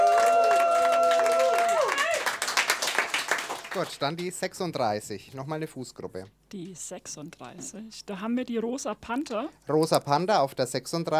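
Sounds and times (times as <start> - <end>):
crowd clapping: 0.0 - 4.4
speech: 3.8 - 11.1.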